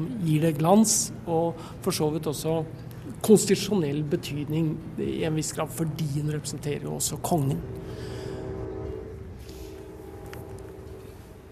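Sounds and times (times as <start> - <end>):
speech: 0.0 - 8.1
low rumbling background: 0.0 - 11.5
distant American train whistle blasts: 6.7 - 11.5.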